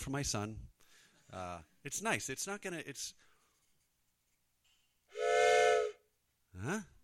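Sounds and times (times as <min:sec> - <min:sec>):
speech: 0:00.0 - 0:00.7, 0:01.3 - 0:03.3, 0:06.6 - 0:07.0
whistle blast marking a speaker's time limit: 0:05.1 - 0:06.0.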